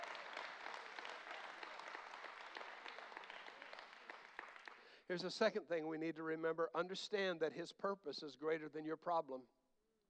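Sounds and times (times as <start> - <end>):
audience clapping hands: 0.0 - 5.1
speech: 5.1 - 9.6.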